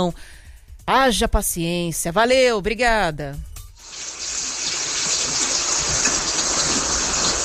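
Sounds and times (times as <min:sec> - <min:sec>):
speech: 0:00.0 - 0:03.5
steady rain falling: 0:03.8 - 0:07.4.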